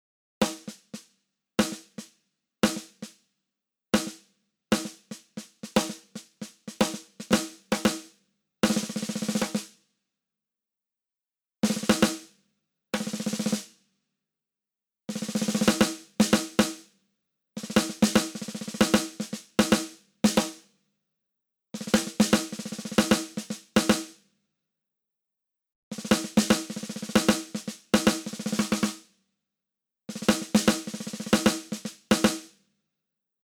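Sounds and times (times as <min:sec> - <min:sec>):
dry snare drum: 0:00.4 - 0:03.3, 0:04.0 - 0:09.8, 0:11.6 - 0:12.4, 0:13.0 - 0:13.8, 0:15.1 - 0:16.9, 0:17.6 - 0:20.7, 0:21.8 - 0:24.2, 0:25.9 - 0:29.1, 0:30.1 - 0:32.6.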